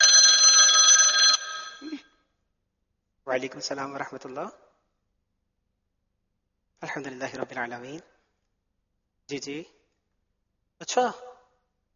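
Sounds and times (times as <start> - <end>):
telephone ringing for an incoming call: 0.0 - 2.0
speech: 3.3 - 4.7, 6.8 - 8.1, 9.3 - 9.8, 10.8 - 11.3.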